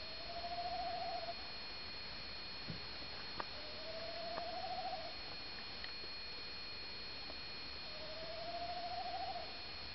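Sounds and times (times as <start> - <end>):
tawny owl giving warbling hoots: 0.0 - 1.4, 3.6 - 5.2, 7.8 - 9.6
steady background hiss: 0.0 - 9.9.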